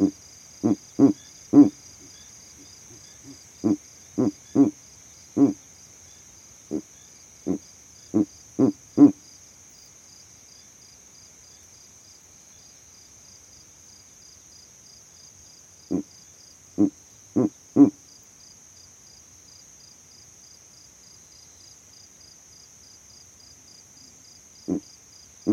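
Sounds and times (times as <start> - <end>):
speech: 0.0 - 1.2
Verreaux's eagle owl male uttering low grunts from a tree in savanna: 0.0 - 2.2, 2.9 - 4.8, 5.4 - 5.6, 6.7 - 9.2, 15.9 - 16.1, 16.8 - 18.0, 24.6 - 24.9
shrill insect trill: 0.0 - 25.5.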